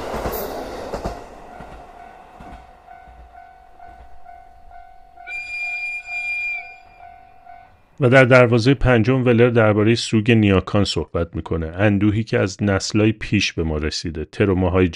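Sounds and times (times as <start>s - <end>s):
train passing on rails: 0.0s - 8.9s
high shrill train wheel squeal: 5.2s - 7.7s
speech: 8.0s - 14.9s.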